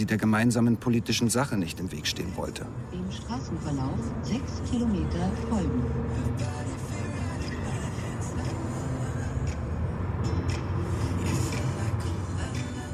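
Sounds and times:
speech: 0.0s - 6.8s
Volkswagen car engine rumble heard from inside: 0.0s - 12.9s
road noise inside a moving Volkswagen car: 0.0s - 12.9s.

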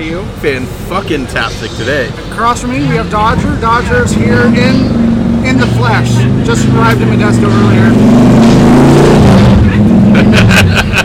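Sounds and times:
speech: 0.0s - 9.4s
loud motorcycle engine roaring as it passes: 2.5s - 10.7s
laughter: 9.7s - 11.0s.

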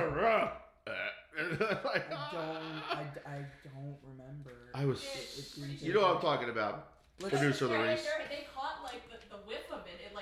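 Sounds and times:
speech: 0.4s - 10.2s
long loud croaking burp: 0.8s - 1.4s.

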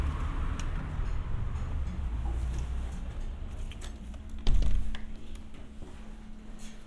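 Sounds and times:
deep low rumble: 0.0s - 5.4s.

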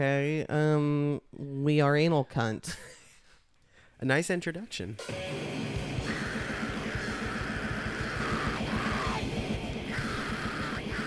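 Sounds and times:
speech: 0.0s - 0.9s, 1.7s - 2.9s, 4.0s - 5.8s
dense wall of distorted guitars: 5.0s - 11.0s
fast pounding drums: 5.1s - 11.0s
raw shrieking screamed black metal vocals: 6.0s - 11.0s.

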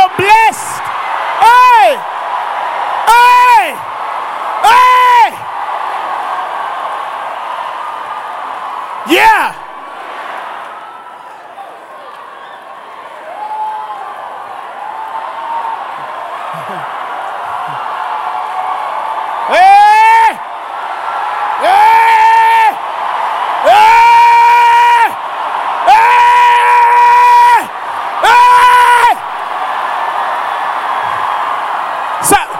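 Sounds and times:
audience shouting and cheering in a large room: 0.0s - 32.5s
murmur of crowd noise in a large room: 29.1s - 32.5s.

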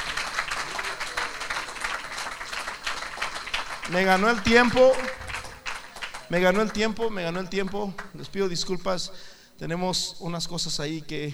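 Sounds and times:
audience applause: 0.0s - 7.0s
speech: 3.9s - 5.2s, 6.3s - 11.3s.

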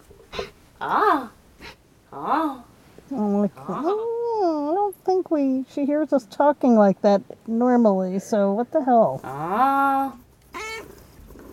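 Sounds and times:
low noise: 0.0s - 11.5s
speech: 0.8s - 1.4s, 2.1s - 10.2s
cat meowing: 10.5s - 11.0s.

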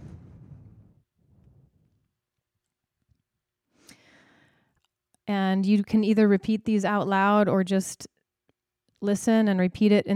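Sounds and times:
person taking a deep breath: 3.8s - 4.8s
speech: 5.3s - 8.1s, 9.0s - 10.1s.

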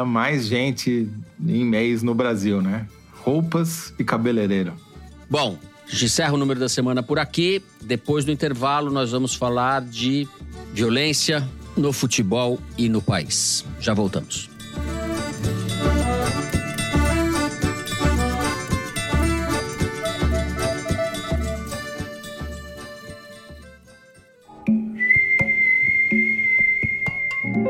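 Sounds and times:
speech: 0.0s - 15.0s
busy instrumental music with a beat: 14.4s - 27.6s
whistled tune: 24.7s - 27.6s.

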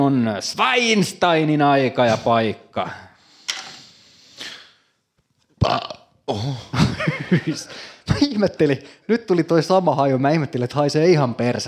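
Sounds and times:
speech: 0.1s - 3.1s, 5.7s - 6.7s, 7.3s - 11.6s
person with heartburn burping: 5.6s - 6.5s
laughter: 6.7s - 8.5s.

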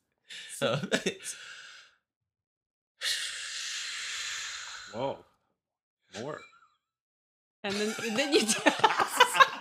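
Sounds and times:
speech: 0.6s - 1.6s, 4.9s - 5.3s, 6.1s - 6.5s, 7.6s - 9.2s
long breathy exhale of a deep breath: 3.0s - 5.0s
laughter: 7.7s - 9.5s.

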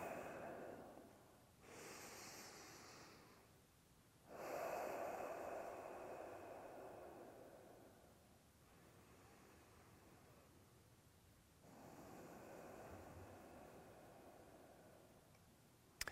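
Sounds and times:
slow deep breathing during a guided qigong exercise: 0.0s - 3.6s, 4.3s - 10.8s, 11.6s - 15.5s.

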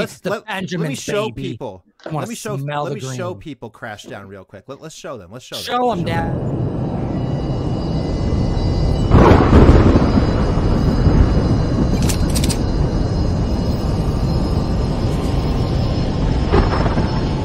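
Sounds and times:
laughter: 0.0s - 3.4s
speech: 0.0s - 6.7s
loud continuous thunderstorm rumble: 6.3s - 17.4s
heavy thunder crack: 8.9s - 12.0s, 16.2s - 17.4s.

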